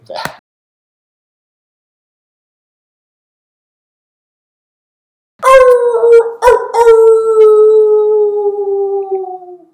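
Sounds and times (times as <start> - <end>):
wolves howling: 5.4 - 9.7.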